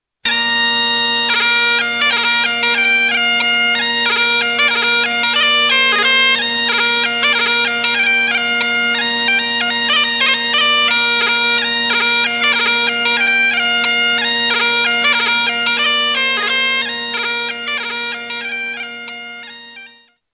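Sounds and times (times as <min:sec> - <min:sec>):
Scottish bagpipes: 0:00.2 - 0:20.2.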